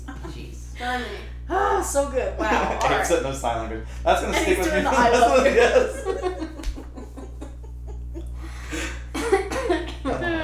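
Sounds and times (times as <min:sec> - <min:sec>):
low steady hum: 0:00.0 - 0:10.4
speech: 0:00.8 - 0:06.5
laughter: 0:02.4 - 0:03.1, 0:04.1 - 0:10.4
person coughing: 0:08.8 - 0:10.4
murmured voice: 0:10.1 - 0:10.4.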